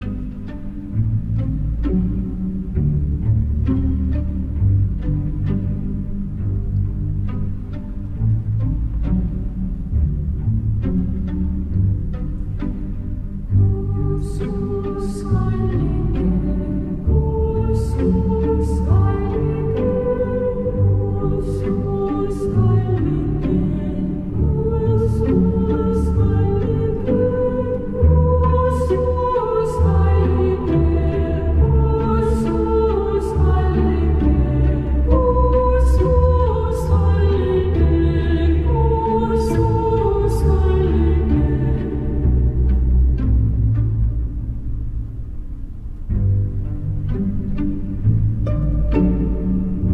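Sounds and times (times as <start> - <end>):
strings playing: 0.0 - 49.9
female choir singing a lullaby: 13.6 - 42.5.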